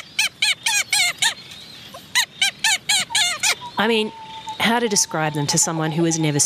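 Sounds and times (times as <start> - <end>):
tube-nosed seabird giving nasal squeaky honking calls: 0.0 - 6.4
speech: 3.8 - 6.4.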